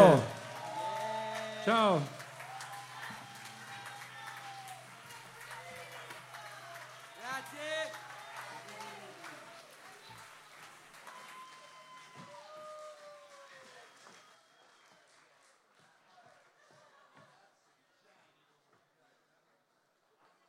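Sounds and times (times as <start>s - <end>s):
crowd voices and cheers: 0.0s - 14.9s
audience applauding: 0.0s - 16.7s
speech: 1.6s - 2.2s.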